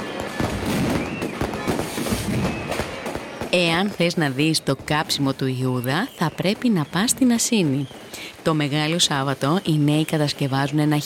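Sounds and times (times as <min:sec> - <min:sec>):
sharp firework bangs: 0:00.0 - 0:05.0
dense continuous firework explosions: 0:00.0 - 0:09.0
crowd noise: 0:00.0 - 0:11.0
fireworks crackling and popping at a midnight celebration: 0:00.0 - 0:11.0
speech: 0:03.6 - 0:11.0.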